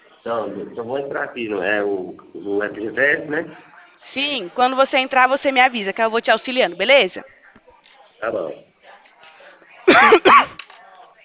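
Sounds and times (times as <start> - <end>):
faint noise: 0.0 - 11.2
speech: 0.2 - 7.4, 8.2 - 8.7
person coughing: 9.9 - 10.6.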